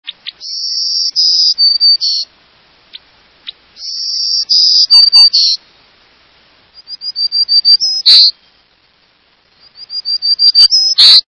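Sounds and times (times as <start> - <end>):
Black-throated Green Warbler singing: 0.1 - 2.3, 2.9 - 5.6, 6.7 - 8.6, 9.5 - 11.2.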